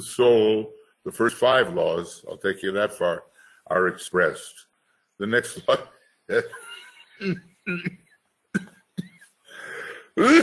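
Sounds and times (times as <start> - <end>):
speech: 0.0 - 8.7, 10.2 - 10.4
chuckle: 5.6 - 8.0, 8.6 - 10.4
coughing and throat clearing: 6.3 - 8.0, 8.6 - 9.2, 10.0 - 10.4.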